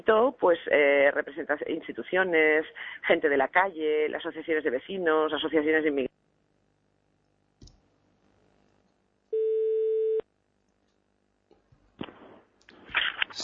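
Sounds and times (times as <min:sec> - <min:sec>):
speech: 0:00.0 - 0:06.2
steady phone tone: 0:09.3 - 0:10.2.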